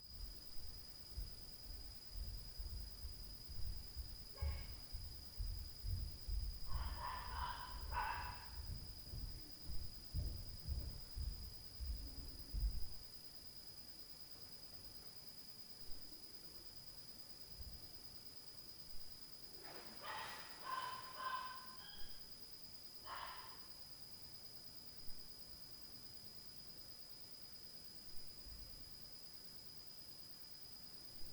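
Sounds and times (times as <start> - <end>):
night ambience: 0.1 - 25.4
dog at night: 4.4 - 4.8, 6.7 - 8.7, 19.8 - 22.2, 23.1 - 23.8.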